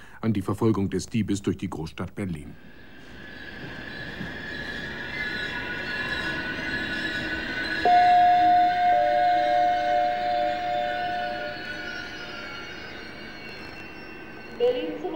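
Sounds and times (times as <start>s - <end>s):
speech: 0.2s - 2.8s
train rail rumble pulling into a station: 2.7s - 15.1s
high thin train wheel squeal: 3.5s - 15.0s.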